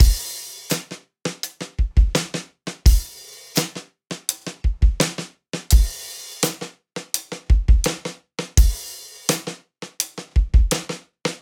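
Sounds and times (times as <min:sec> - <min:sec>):
live trip hop acoustic drums: 0:00.0 - 0:11.4.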